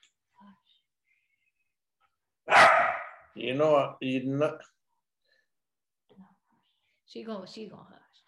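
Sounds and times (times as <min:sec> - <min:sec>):
female dog barking: 0:02.5 - 0:03.2
speech: 0:03.4 - 0:04.8, 0:07.1 - 0:08.1.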